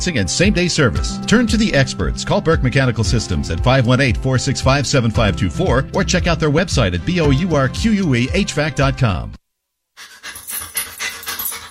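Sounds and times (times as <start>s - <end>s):
speech: 0.0s - 9.4s
dog panting: 10.0s - 11.7s.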